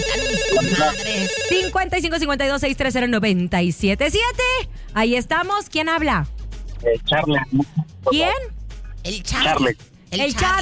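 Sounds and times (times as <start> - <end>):
telephone ringing with electronic ringtone for an incoming call: 0.0 - 1.9
speech: 0.5 - 10.6.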